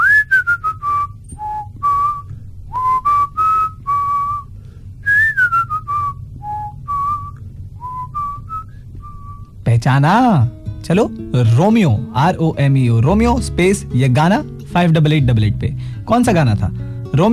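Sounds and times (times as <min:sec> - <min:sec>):
person whistling a song melody: 0:00.0 - 0:09.5
faint low hum: 0:00.0 - 0:17.3
speech: 0:09.8 - 0:17.3.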